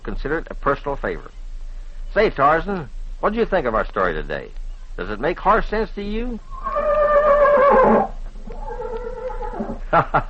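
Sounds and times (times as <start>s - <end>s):
speech: 0.1s - 1.4s, 2.1s - 6.8s, 7.7s - 8.1s, 9.9s - 10.2s
horse whinnying with a quavering falling neigh: 6.4s - 9.8s
laughter: 9.8s - 10.2s.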